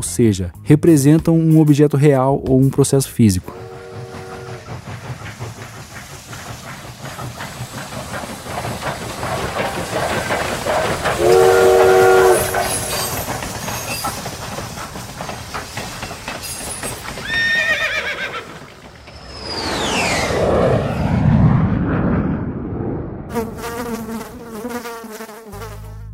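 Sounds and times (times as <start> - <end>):
speech: 0.0 - 3.6
train rumbling along rails: 3.0 - 22.6
short train whistle blast: 3.5 - 4.7, 11.2 - 13.1
horse neighing in a loud wavering whinny: 17.2 - 18.7
buzzing insect drone: 23.3 - 26.1.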